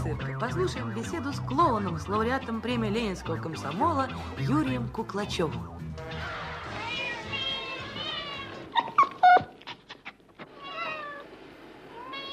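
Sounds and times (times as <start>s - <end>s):
speech: 0.1s - 6.3s
cat meowing: 6.1s - 11.3s, 11.9s - 12.3s.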